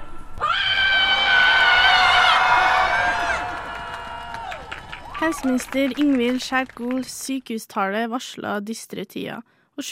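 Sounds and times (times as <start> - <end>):
large protest crowd roaring together at full volume: 0.4 - 5.5
speech: 5.3 - 9.9.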